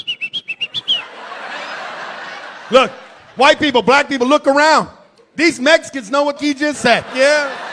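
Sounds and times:
person whistling short clear notes imitating a called-out name: 0.0s - 1.1s
laughter: 0.6s - 4.2s, 6.6s - 7.7s
speech: 2.7s - 7.6s.

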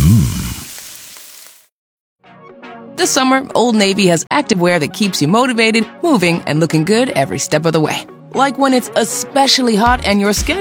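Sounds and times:
Spam pork sizzling in a pan: 0.0s - 1.7s
speech: 3.0s - 10.5s.

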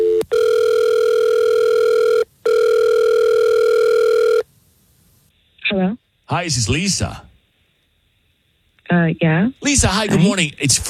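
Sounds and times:
outgoing phone call electronic ring tones: 0.0s - 4.4s
speech: 6.4s - 7.2s, 8.9s - 10.8s.

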